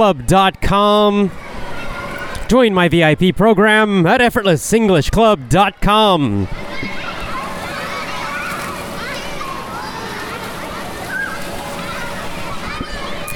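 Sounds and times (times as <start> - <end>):
speech: 0.0 - 1.4, 2.5 - 6.6
children shouting and shrieking in plastic pools outside a mall: 0.7 - 3.2, 5.2 - 13.3
water splashing and sloshing in plastic pools: 1.3 - 2.6, 6.4 - 13.3.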